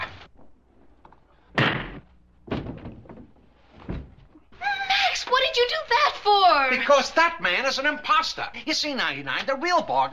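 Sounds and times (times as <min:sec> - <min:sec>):
door bursting open with a loud bang: 0:01.5 - 0:04.2
heavy thuds and clatter: 0:01.6 - 0:04.3
speech: 0:05.6 - 0:10.1.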